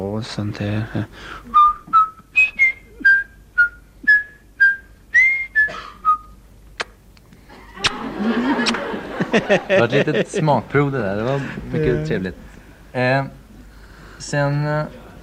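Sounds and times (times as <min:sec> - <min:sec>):
speech: 0:00.2 - 0:01.6, 0:09.4 - 0:13.4, 0:14.2 - 0:15.0
person whistling a short melodic tune: 0:01.5 - 0:06.4
laughter: 0:07.5 - 0:10.5.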